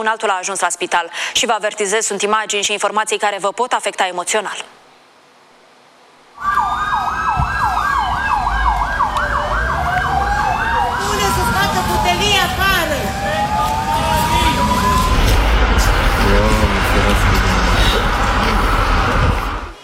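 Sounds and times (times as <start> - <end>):
speech: 0.0 - 4.8
street noise: 6.3 - 19.8
fire engine sirens wailing: 6.4 - 19.8.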